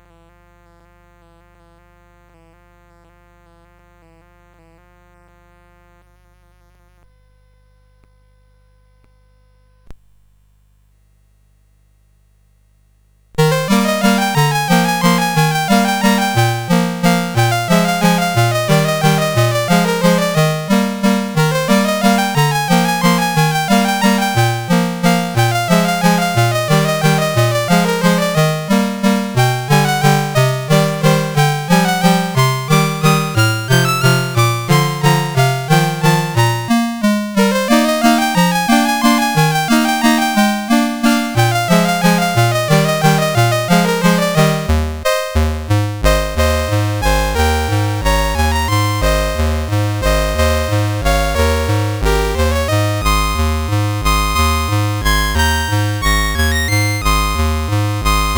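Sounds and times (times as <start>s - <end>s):
waltz on CSG8580R5 sound chip: 13.4s - 58.3s.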